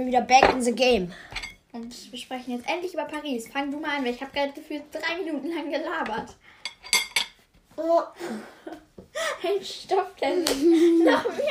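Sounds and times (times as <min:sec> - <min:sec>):
speech: 0:00.0 - 0:07.0, 0:07.8 - 0:11.4
metallic cutlery clinking against a plate: 0:06.6 - 0:07.4
laughter: 0:10.5 - 0:11.4.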